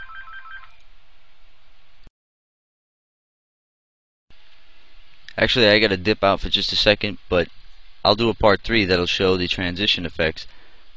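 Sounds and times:
telephone ringing: 0:00.0 - 0:00.8
speech: 0:05.4 - 0:10.6.

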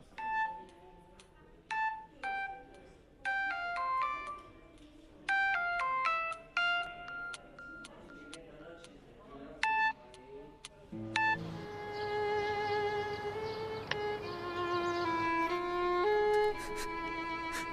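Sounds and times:
low murmur of noise: 0:00.0 - 0:17.7
melodic phone ringtone: 0:00.1 - 0:00.6, 0:03.3 - 0:04.5, 0:05.3 - 0:08.4.

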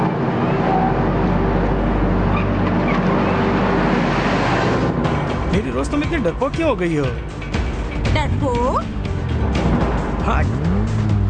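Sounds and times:
road noise: 0:00.0 - 0:11.2
car engine running while being driven: 0:01.0 - 0:11.2
speech: 0:06.1 - 0:07.4, 0:08.2 - 0:09.0, 0:10.3 - 0:11.0.

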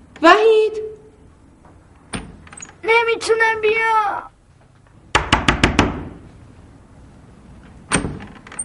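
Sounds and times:
speech: 0:00.2 - 0:00.6, 0:03.2 - 0:04.3
knocking on a locked door: 0:05.1 - 0:06.2.

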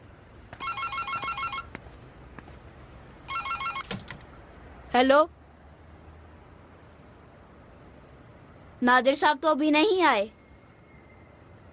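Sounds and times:
telephone ringing with electronic trilling: 0:00.6 - 0:01.7, 0:03.3 - 0:04.0
speech: 0:05.0 - 0:05.4, 0:08.8 - 0:10.4.

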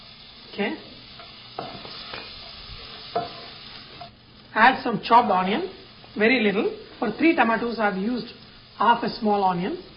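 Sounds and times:
cumin seeds and chopped garlic sizzling in butter in a pan: 0:00.0 - 0:09.9
speech: 0:00.5 - 0:00.9, 0:04.6 - 0:09.9
short scraping stirs in a pan: 0:01.2 - 0:04.2.

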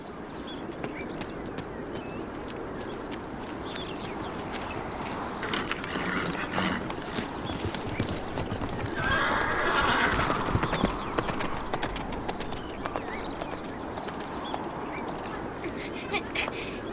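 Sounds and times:
horse hooves clip-clopping: 0:00.6 - 0:16.6
horse neighing: 0:05.4 - 0:07.2, 0:08.7 - 0:11.8.

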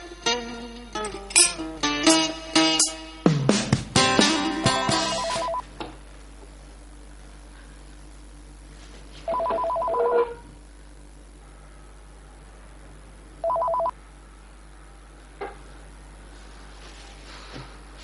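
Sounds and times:
quiet room hum: 0:00.0 - 0:18.0
telephone ringing in electronic trilling bursts: 0:05.1 - 0:05.6, 0:09.3 - 0:10.4, 0:13.4 - 0:13.9.

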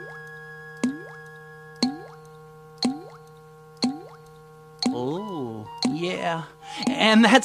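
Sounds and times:
faint steady hum: 0:00.0 - 0:07.4
water dripping from a tap not turned fully off: 0:00.8 - 0:02.2, 0:02.8 - 0:05.0
speech: 0:06.3 - 0:07.4.

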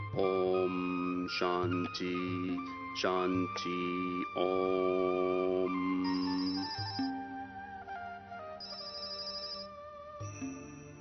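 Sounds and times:
speech: 0:00.2 - 0:07.1
telephone bright electronic ringtone: 0:06.1 - 0:07.1, 0:08.6 - 0:09.7.

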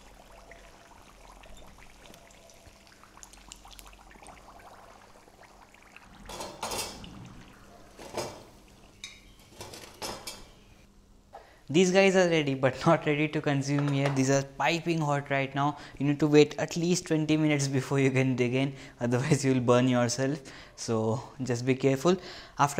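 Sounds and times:
steady low sizzle of hot oil: 0:00.0 - 0:10.8
utensils clinking against a pan and plate while lifting fried samosas: 0:09.0 - 0:10.6
speech: 0:11.7 - 0:22.7.

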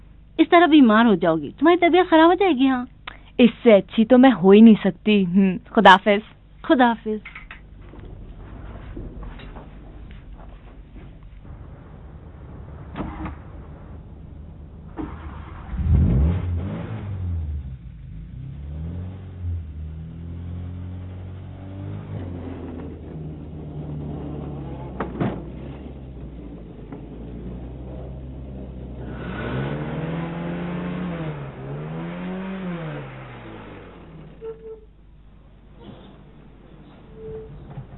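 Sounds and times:
speech: 0:00.4 - 0:07.4
car engine revving and sputtering without catching: 0:07.7 - 0:34.6.

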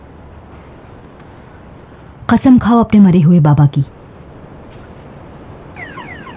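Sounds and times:
steady hiss: 0:00.0 - 0:06.3
speech: 0:02.3 - 0:04.0
car safety alarm wailing with sweeping electronic tones: 0:05.8 - 0:06.3.

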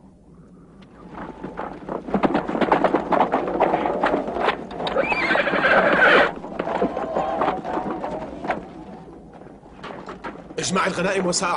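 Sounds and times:
horse hooves clip-clopping as its rider sets off: 0:00.8 - 0:11.5
horse whinnying loudly: 0:04.8 - 0:08.1
speech: 0:10.8 - 0:11.5.

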